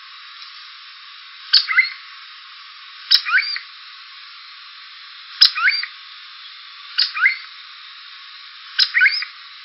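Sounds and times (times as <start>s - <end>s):
soft hiss: 0.0s - 9.6s
cuckoo calls: 1.5s - 2.0s, 3.1s - 3.7s, 5.4s - 7.6s, 8.8s - 9.4s.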